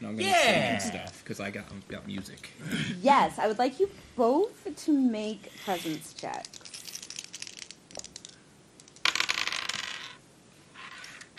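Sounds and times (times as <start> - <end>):
speech: 0.1 - 6.7
two dice clattering across a hard tabletop: 6.2 - 10.2.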